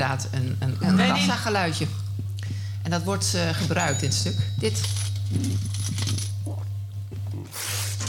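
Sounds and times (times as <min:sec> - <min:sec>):
speech: 0:00.0 - 0:02.0, 0:02.8 - 0:06.2
steady low hum: 0:00.0 - 0:07.5
cash register drawer ringing open: 0:03.8 - 0:06.4
coins clinking and jingling: 0:03.8 - 0:06.4.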